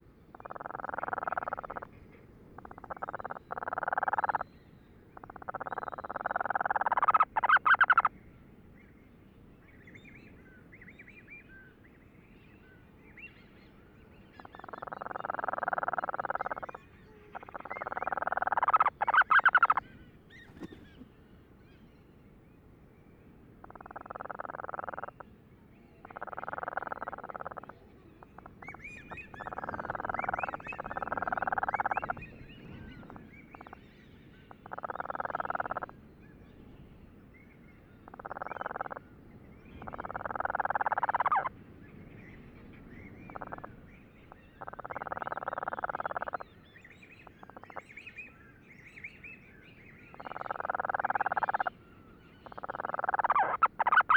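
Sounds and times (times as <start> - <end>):
Cape Verde storm petrel calling: 0.3 - 1.9, 2.6 - 4.5, 5.1 - 8.2, 14.4 - 21.0, 23.6 - 25.2, 26.0 - 33.9, 34.5 - 36.0, 38.0 - 41.5, 42.2 - 48.3, 49.9 - 54.1.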